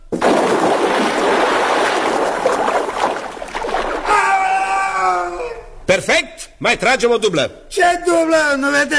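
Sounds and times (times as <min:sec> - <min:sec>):
stunt performer jumping headfirst from a rock into sea waves: 0:00.0 - 0:04.2
person crying out: 0:04.0 - 0:05.7
speech: 0:05.9 - 0:08.9.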